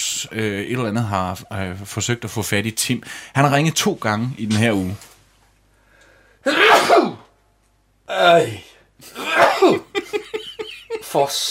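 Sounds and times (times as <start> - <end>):
speech: 0.2 - 5.1, 8.1 - 9.8, 11.1 - 11.4
person sneezing: 6.4 - 7.4, 9.0 - 9.9
laughter: 9.1 - 11.4.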